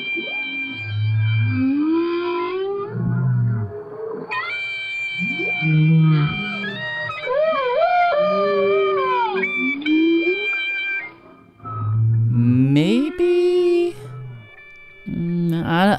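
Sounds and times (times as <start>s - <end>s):
whale singing moaning harmonic calls: 0.0s - 15.5s.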